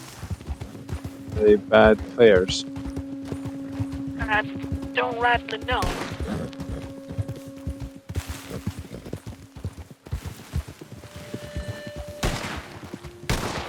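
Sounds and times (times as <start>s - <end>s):
sustained tones: 0.0s - 10.0s, 10.7s - 13.3s
speech: 1.4s - 2.7s, 4.3s - 6.4s
gunshots in a multiplayer game: 5.8s - 6.2s, 12.2s - 13.6s.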